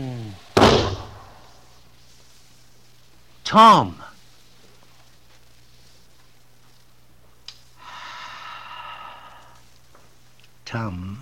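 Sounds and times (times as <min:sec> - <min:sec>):
gunshot muffled by a blanket wrapped around the gun: 0:00.6 - 0:01.5
speech: 0:03.5 - 0:04.1, 0:10.7 - 0:11.1.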